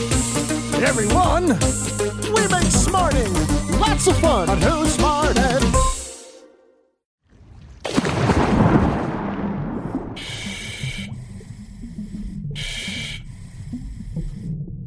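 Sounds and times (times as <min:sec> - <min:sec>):
speech: 0:00.8 - 0:05.9
scuba diver inhaling through regulator underwater: 0:05.7 - 0:06.4, 0:10.2 - 0:14.6
low underwater gurgling rumble: 0:07.4 - 0:14.8
scuba diver's regulator bubbling rush underwater: 0:07.8 - 0:14.8.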